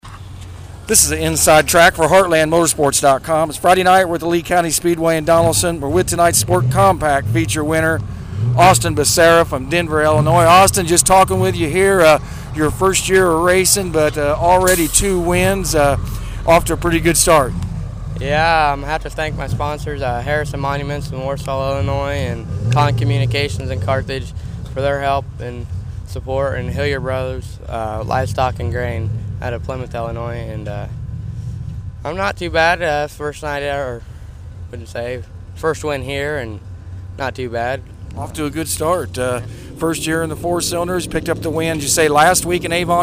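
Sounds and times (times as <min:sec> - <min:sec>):
IMCA Sport Compact race car engine: 0:00.0 - 0:43.0.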